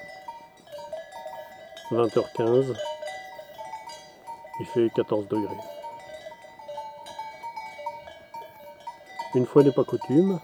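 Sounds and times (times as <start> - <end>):
bells on a flock of ewes at a mountain pass on a September evening: 0.0 - 10.4
speech: 1.9 - 2.9, 4.6 - 5.8, 9.3 - 10.4.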